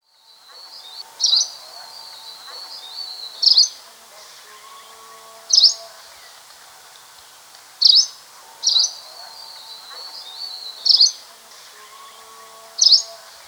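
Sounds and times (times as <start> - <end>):
steady background hiss with faint lower tones: 0.1 - 13.4
two-barred greenish warbler giving a short high slurred call note: 0.6 - 3.8, 4.6 - 6.0, 7.8 - 11.2, 11.9 - 13.4.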